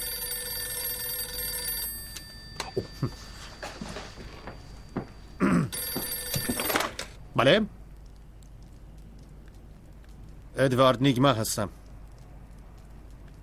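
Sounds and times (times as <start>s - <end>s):
telephone ringing with an incoming call: 0.0s - 7.2s
speech: 2.8s - 3.3s, 7.4s - 7.8s, 10.6s - 11.8s.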